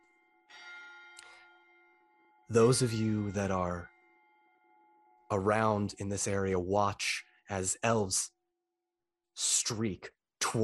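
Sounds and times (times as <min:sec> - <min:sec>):
resonant bell chime ringing: 0:00.0 - 0:05.6
speech: 0:02.5 - 0:03.9, 0:05.3 - 0:08.4, 0:09.4 - 0:10.6.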